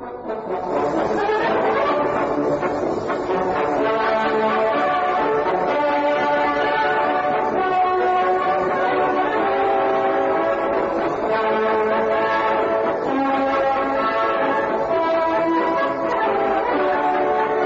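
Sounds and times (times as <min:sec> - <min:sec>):
brass band playing a march on an old recording: 0:00.0 - 0:17.6.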